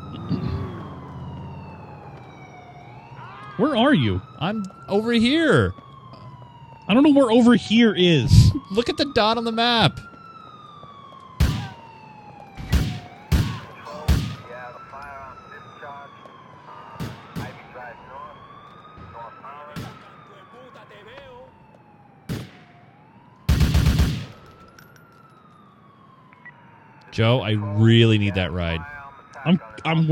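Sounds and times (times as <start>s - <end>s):
police sirens wailing and yelping in a video game: 0.0s - 30.1s
speech: 3.6s - 5.8s, 6.9s - 10.1s, 27.2s - 30.1s
gunshot cracks and bursts of gunfire in a video game: 11.4s - 11.8s.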